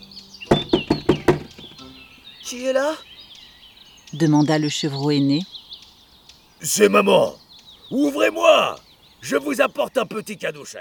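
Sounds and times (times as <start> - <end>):
knocking on a wooden door: 0.5 - 1.8
speech: 2.5 - 3.1, 4.1 - 5.5, 6.6 - 10.7.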